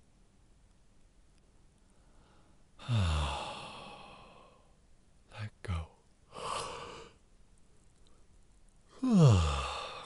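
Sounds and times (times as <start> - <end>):
person yawning: 2.8 - 4.4, 8.9 - 10.0.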